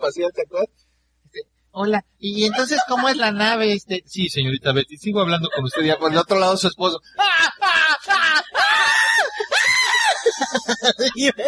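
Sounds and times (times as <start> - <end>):
speech: 0.0 - 8.7, 10.4 - 11.4
laughter: 2.4 - 3.6, 5.2 - 11.4
man screaming loudly, yelping and groaning: 7.2 - 10.4.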